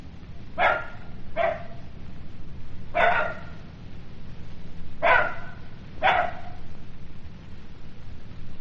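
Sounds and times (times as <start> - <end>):
steady low rumbling hum: 0.0 - 8.6
jackal short harsh yelping barks: 0.6 - 1.9, 2.9 - 3.7, 5.0 - 6.7.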